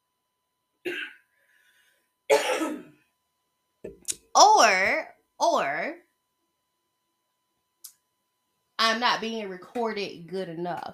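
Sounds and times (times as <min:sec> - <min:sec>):
person coughing: 0:00.8 - 0:01.3, 0:02.3 - 0:03.0
speech: 0:04.4 - 0:06.0, 0:08.8 - 0:10.9.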